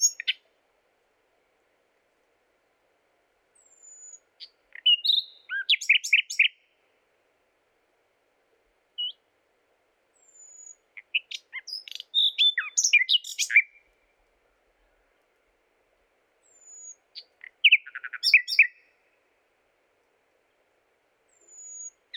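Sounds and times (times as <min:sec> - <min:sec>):
common nightingale Luscinia megarhynchos singing: 0:00.0 - 0:00.6, 0:03.5 - 0:06.9, 0:08.9 - 0:09.3, 0:10.1 - 0:15.3, 0:16.4 - 0:19.4, 0:21.3 - 0:22.1.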